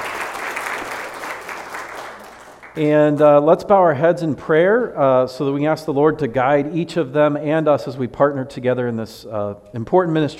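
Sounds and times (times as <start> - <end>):
audience applause in a church: 0.0 - 2.8
speech: 2.8 - 10.3.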